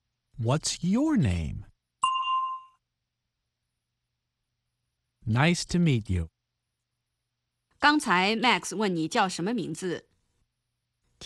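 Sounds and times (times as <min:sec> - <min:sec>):
speech: 0:00.4 - 0:01.7, 0:05.3 - 0:06.3, 0:07.8 - 0:10.1
bell chime played as a cue before an answer: 0:02.0 - 0:02.8.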